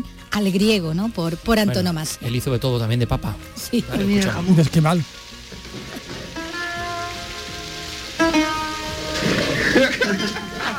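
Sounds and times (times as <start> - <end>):
speech: 0.4 - 5.3
steady rain in a film scene: 3.6 - 10.7
laughter: 9.3 - 10.7.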